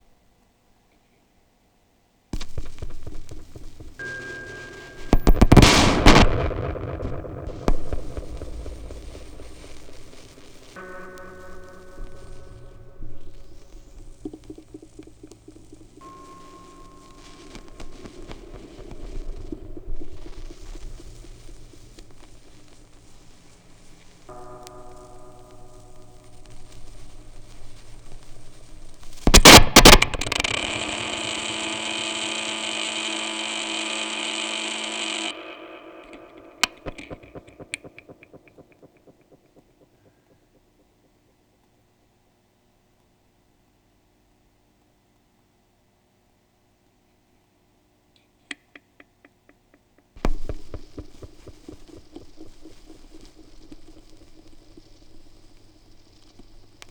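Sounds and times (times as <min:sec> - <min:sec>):
vinyl record noise with tape echo: 0:02.4 - 0:40.3, 0:50.2 - 0:56.9.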